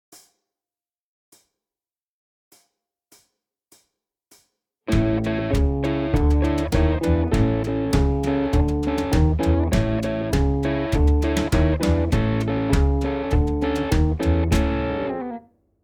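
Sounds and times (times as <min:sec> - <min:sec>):
Chicago blues guitar: 0:04.9 - 0:15.4.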